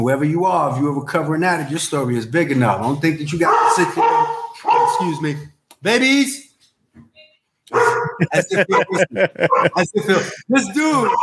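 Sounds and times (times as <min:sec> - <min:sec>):
speech: 0:00.0 - 0:06.4, 0:07.7 - 0:11.2
dog barking: 0:03.4 - 0:05.2, 0:07.7 - 0:09.9, 0:10.9 - 0:11.2
laughter: 0:07.8 - 0:11.2.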